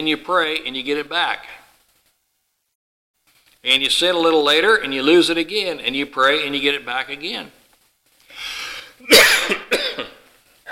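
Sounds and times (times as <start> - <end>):
speech: 0.0 - 1.6, 3.6 - 7.6, 9.0 - 9.7
person with an irritated throat coughing: 9.0 - 10.6.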